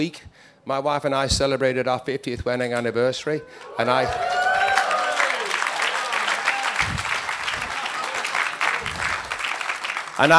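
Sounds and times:
speech: 0.0s - 4.4s, 10.2s - 10.3s
audience applause after a speaker's remark at a talk: 3.5s - 10.3s.

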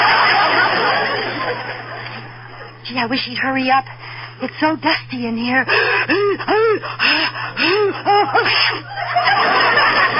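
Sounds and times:
laughter: 0.0s - 2.8s, 6.1s - 10.1s
speech: 3.0s - 10.1s
person's rising gasping breaths before a sneeze: 5.7s - 8.8s
person sneezing: 7.6s - 8.9s.

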